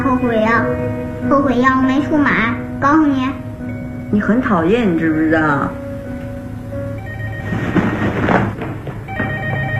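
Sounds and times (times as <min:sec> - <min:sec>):
speech: 0:00.2 - 0:03.5, 0:04.1 - 0:05.8
telephone ringing in a home: 0:06.9 - 0:09.7.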